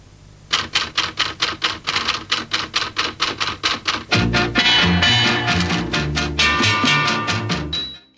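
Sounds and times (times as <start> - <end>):
typewriter keystrokes clacking: 0.5 - 4.1
orchestral music: 4.1 - 7.8.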